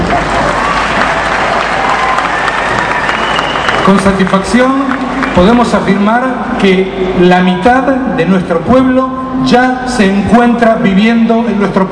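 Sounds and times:
sustained applause from a large audience: 0.0s - 6.1s
speech: 3.9s - 11.9s.

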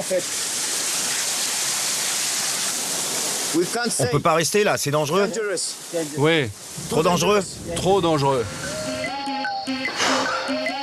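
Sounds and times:
speech: 0.0s - 0.6s, 3.5s - 8.7s
heavy rain pouring down outdoors: 0.0s - 10.8s.

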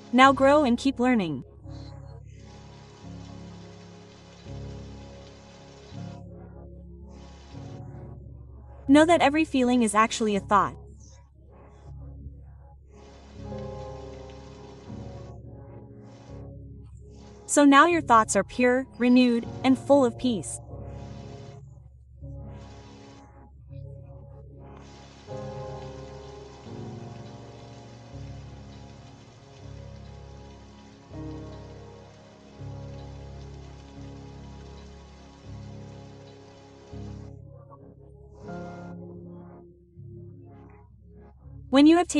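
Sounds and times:
steady rain: 0.0s - 6.3s, 7.1s - 8.0s, 12.9s - 16.5s, 17.1s - 17.7s, 19.0s - 21.6s, 22.4s - 23.2s, 24.7s - 37.3s
soft sustained musical drone: 0.0s - 42.1s
speech: 0.1s - 1.5s, 8.9s - 10.8s, 17.5s - 20.6s, 41.8s - 42.1s.

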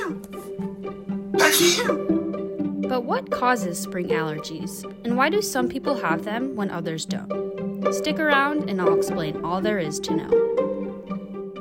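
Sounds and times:
loud breathy sneeze: 0.0s - 0.5s, 1.4s - 2.0s
speech: 1.5s - 2.2s, 2.9s - 10.4s.

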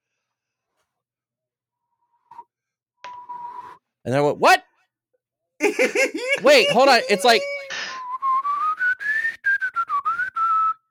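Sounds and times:
speech: 4.0s - 4.7s, 5.6s - 7.5s
laughter: 5.6s - 7.9s
person whistling a tune: 6.4s - 10.9s.

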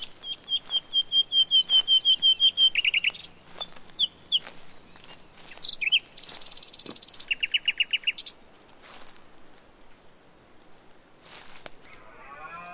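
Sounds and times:
nightingales singing: 0.0s - 8.4s, 11.8s - 12.7s.

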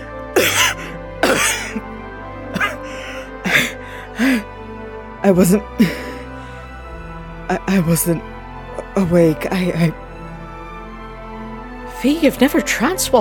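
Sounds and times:
person coughing up a lungful of water: 0.4s - 1.8s, 2.5s - 2.8s
strained gasping vocal sounds: 0.4s - 1.8s, 2.5s - 4.6s
speech: 1.8s - 2.0s, 5.2s - 6.1s, 7.5s - 8.3s, 9.0s - 10.0s, 12.0s - 13.1s.

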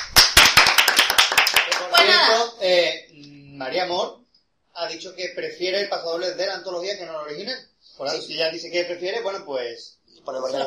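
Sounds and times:
applause from a few people clapping: 0.0s - 2.4s
speech: 3.7s - 4.2s, 4.8s - 10.6s.

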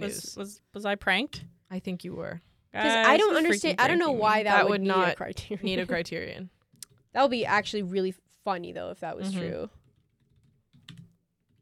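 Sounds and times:
speech: 0.0s - 9.8s
clicking of keys on a computer keyboard: 9.7s - 11.6s.

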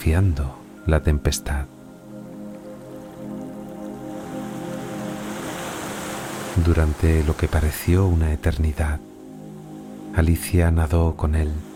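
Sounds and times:
speech: 0.0s - 1.8s, 6.6s - 9.1s, 10.1s - 11.7s
waves breaking on a lonely beach: 2.5s - 7.9s.

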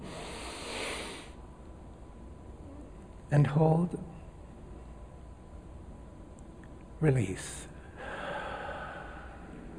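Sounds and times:
many people in a spiritual community inhaling together during a breathing practice: 0.0s - 1.4s, 8.0s - 9.7s
speech: 3.3s - 4.2s, 7.0s - 7.7s.

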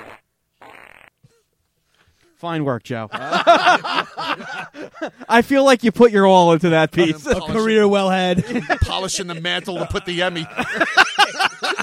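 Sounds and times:
fart sound effects as show segment bumper: 0.0s - 1.2s
speech: 2.4s - 11.1s
laughter: 3.1s - 5.4s, 7.0s - 11.8s.

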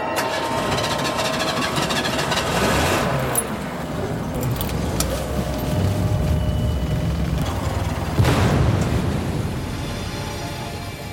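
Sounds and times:
steady rumbling like passing traffic: 0.1s - 11.1s
explosion: 7.9s - 10.3s.

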